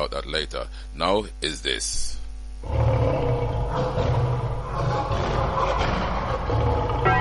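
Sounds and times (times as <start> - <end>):
speech: 0.0 - 4.1
lion roaring: 2.6 - 7.1.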